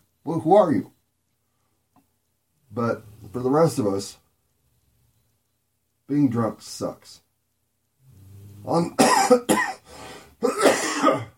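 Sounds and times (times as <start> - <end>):
speech: 0.2 - 1.0, 2.7 - 4.2, 6.1 - 7.2, 8.6 - 9.7, 10.5 - 11.3
person coughing harshly: 9.0 - 11.3.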